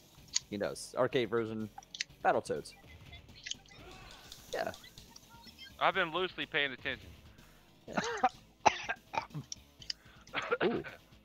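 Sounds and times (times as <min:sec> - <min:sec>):
speech: 0:00.5 - 0:02.9, 0:04.6 - 0:04.8, 0:05.8 - 0:07.2, 0:07.9 - 0:08.4, 0:10.6 - 0:11.0
person coughing: 0:07.9 - 0:09.5, 0:10.3 - 0:11.0.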